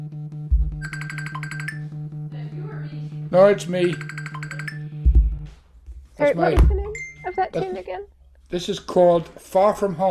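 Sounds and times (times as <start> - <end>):
phone ringing with rapid pulsing electronic trill: 0.8 - 2.0, 3.6 - 5.0
speech: 3.3 - 4.2, 6.2 - 6.8, 7.4 - 10.0
dull thump: 6.6 - 6.9.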